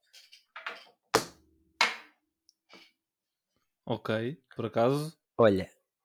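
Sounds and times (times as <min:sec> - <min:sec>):
small hard object like keys set down on a table: 0:00.2 - 0:02.9
speech: 0:03.9 - 0:05.8.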